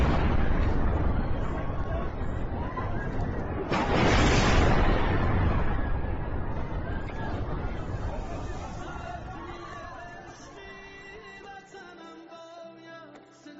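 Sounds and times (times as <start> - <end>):
explosions from a hospital being bombed: 0.0 - 10.4.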